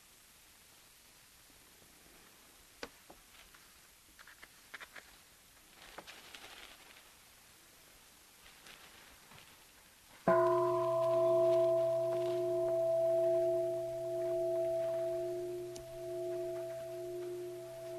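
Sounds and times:
single bell struck and ringing with a long sustained tone: 0:10.3 - 0:17.9.

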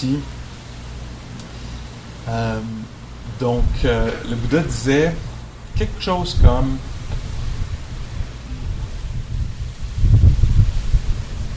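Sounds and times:
speech: 0:00.0 - 0:00.4, 0:02.3 - 0:07.2
wind blowing outdoors: 0:00.0 - 0:11.5.

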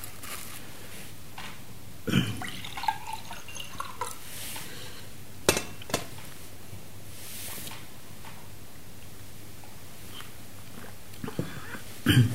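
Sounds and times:
person gulping and swallowing water: 0:02.1 - 0:04.3, 0:10.2 - 0:12.3
light glass clink: 0:05.5 - 0:06.1.

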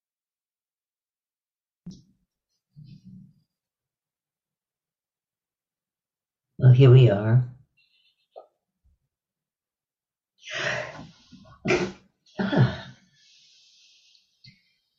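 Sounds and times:
speech: 0:06.7 - 0:07.6
drawn-in breath: 0:10.4 - 0:11.5, 0:13.1 - 0:14.4
loud sneeze with sharp breathy bursts: 0:11.6 - 0:13.0.

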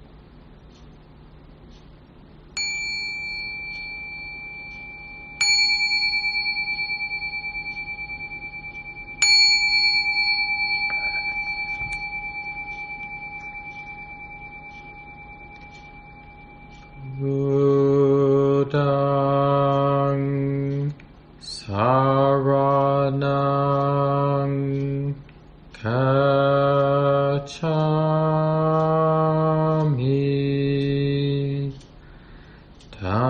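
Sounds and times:
low sustained hum: 0:00.0 - 0:33.2
meditation bell struck to begin: 0:02.6 - 0:18.9.

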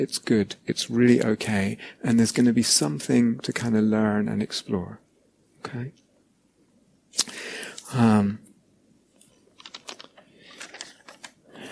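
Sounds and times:
speech: 0:00.0 - 0:05.0, 0:05.6 - 0:06.0, 0:07.9 - 0:08.4
piece of paper rustling and crinkling: 0:09.2 - 0:11.7.

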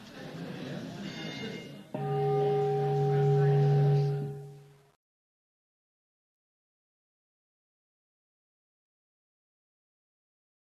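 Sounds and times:
bell strike: 0:01.2 - 0:04.8.

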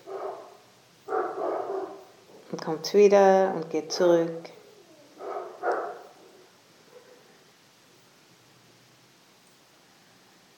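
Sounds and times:
dogs barking: 0:00.0 - 0:02.4, 0:05.1 - 0:07.3
speech: 0:02.5 - 0:04.6.

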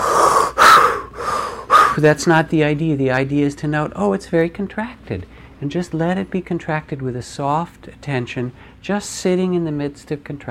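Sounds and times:
exaggerated deep breaths demonstrating deeper breathing: 0:00.0 - 0:02.0
speech: 0:02.0 - 0:10.4.

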